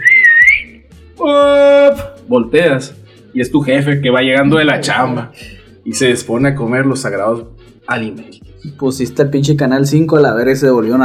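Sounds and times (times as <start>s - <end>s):
person whistling: 0.0s - 0.9s
speech: 2.3s - 11.0s.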